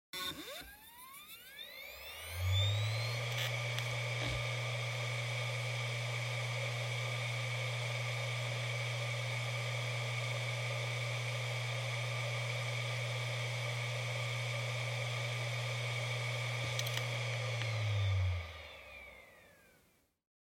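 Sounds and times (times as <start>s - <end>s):
hard disk drive operating noise: 0.2s - 19.8s.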